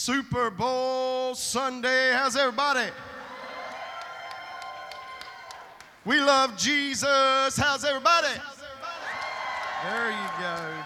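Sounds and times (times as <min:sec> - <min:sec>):
speech: 0:00.0 - 0:03.2, 0:06.0 - 0:08.7, 0:09.8 - 0:10.8
large crowd shouting and cheering: 0:02.1 - 0:10.8
claps and whoops: 0:03.3 - 0:06.0, 0:09.0 - 0:10.8.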